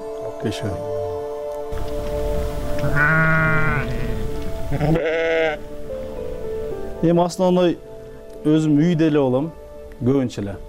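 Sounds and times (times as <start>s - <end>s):
speech: 0.4s - 0.9s, 1.7s - 2.1s, 2.8s - 3.2s, 4.7s - 5.7s, 7.0s - 10.6s
sheep bleating in a flock after lambing: 2.8s - 5.7s.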